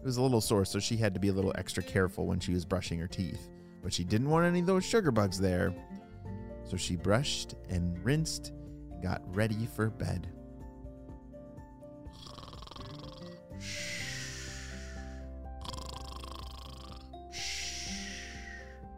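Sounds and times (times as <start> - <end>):
speech: 0.0 - 6.0, 6.7 - 10.4
sleeping parents snoring heavily: 12.1 - 18.8
steady low musical drone: 13.6 - 15.3, 17.3 - 18.9.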